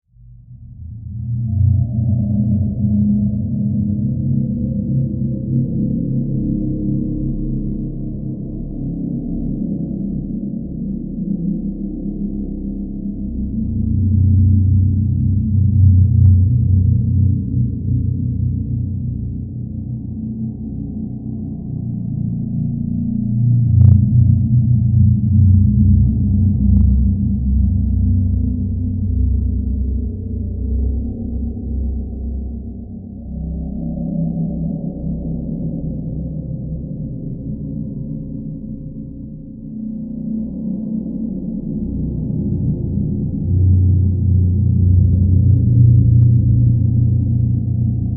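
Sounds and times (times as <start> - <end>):
cold dark demonic horror cave drone: 0.1 - 48.1.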